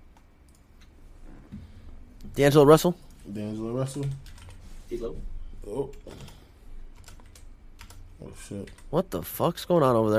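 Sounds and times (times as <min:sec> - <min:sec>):
low steady hum: 0:00.0 - 0:10.1
speech: 0:02.4 - 0:06.4, 0:08.2 - 0:10.1
typing on a sixty percent compact keyboard: 0:03.8 - 0:04.6, 0:05.9 - 0:09.0.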